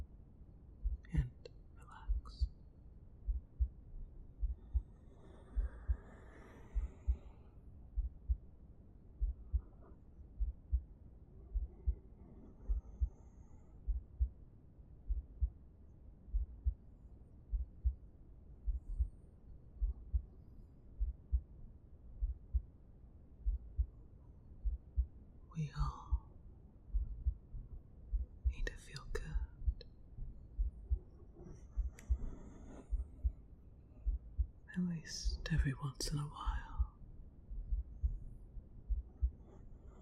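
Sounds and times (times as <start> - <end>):
human heartbeat thumping in double beats: 0.8 - 2.5, 3.2 - 8.5, 9.2 - 13.2, 13.8 - 14.4, 15.1 - 15.6, 16.3 - 16.8, 17.5 - 18.0, 18.6 - 19.2, 19.8 - 20.4, 21.0 - 21.5, 22.2 - 22.7, 23.4 - 24.0, 24.6 - 26.3, 26.9 - 33.4, 34.0 - 40.0
speech: 35.0 - 36.5.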